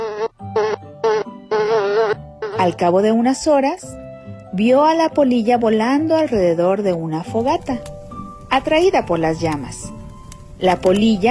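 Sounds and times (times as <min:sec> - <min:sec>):
struggling fly buzzing: 0:00.0 - 0:02.7
speech: 0:02.6 - 0:07.9, 0:08.5 - 0:09.9, 0:10.6 - 0:11.2.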